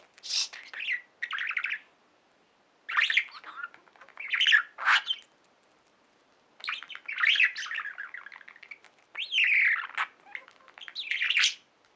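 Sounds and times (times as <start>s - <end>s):
budgerigar chirping and chattering: 0.0s - 1.9s, 2.9s - 5.8s, 6.6s - 11.9s.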